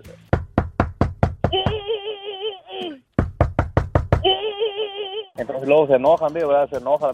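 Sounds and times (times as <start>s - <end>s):
rapid sharp knocking on a door: 0.3s - 1.9s, 3.2s - 4.3s
person calling out in a wavering sing-song voice: 1.5s - 3.0s, 4.2s - 5.4s
speech: 5.4s - 7.1s.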